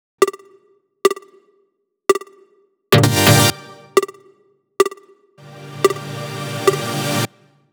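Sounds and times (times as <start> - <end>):
wobble synths in G at 128 BPM: 3.0 - 4.0, 5.4 - 7.4.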